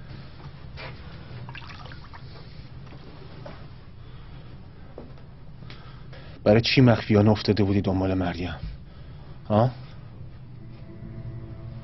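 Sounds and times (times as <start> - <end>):
water pouring into a glass: 1.5 - 2.4
speech: 6.4 - 8.7, 9.5 - 9.8.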